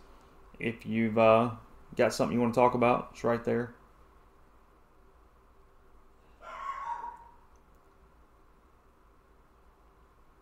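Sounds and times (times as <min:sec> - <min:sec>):
speech: 0:00.6 - 0:03.8
dog barking aggressively: 0:06.4 - 0:07.4.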